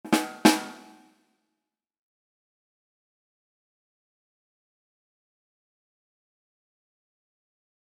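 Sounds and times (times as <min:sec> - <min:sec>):
drum rimshot sting bah dum bah: 0:00.0 - 0:01.0.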